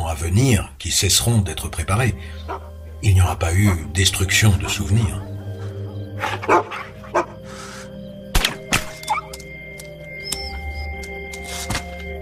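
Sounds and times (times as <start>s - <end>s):
speech: 0.2s - 5.3s, 6.2s - 7.3s
dogs barking in short scattered bursts: 2.2s - 3.0s, 3.6s - 8.0s, 8.6s - 9.5s.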